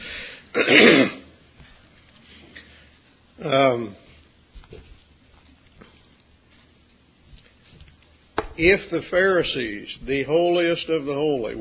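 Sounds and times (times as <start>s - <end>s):
person clearing throat: 0.5s - 1.4s
speech: 0.6s - 1.2s, 3.4s - 4.0s, 8.6s - 11.6s.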